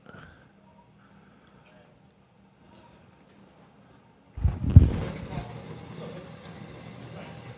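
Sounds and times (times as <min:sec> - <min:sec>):
big truck heavy engine rumble: 0:04.4 - 0:05.8.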